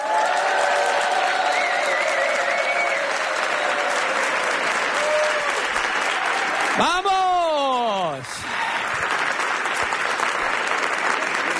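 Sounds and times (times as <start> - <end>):
large concert audience applauding in a Madrid venue: 0.0 - 11.5
whistles from a large concert crowd: 1.4 - 3.6
speech: 6.8 - 7.1.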